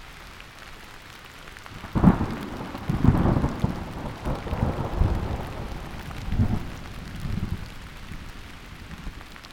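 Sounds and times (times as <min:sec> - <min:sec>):
rain from a thunder shower on sandy back roads near the Sopchoppy River: 0:00.0 - 0:09.5
low rumbles of thunder: 0:01.8 - 0:09.1.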